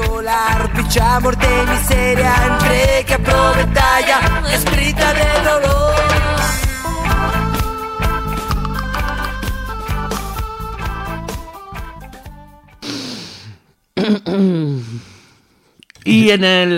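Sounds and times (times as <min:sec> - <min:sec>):
speech: 0:00.2 - 0:06.3, 0:16.3 - 0:16.7
music with plucked tonal notes: 0:01.5 - 0:12.8
woman with a flu-like cold coughing: 0:14.0 - 0:14.8.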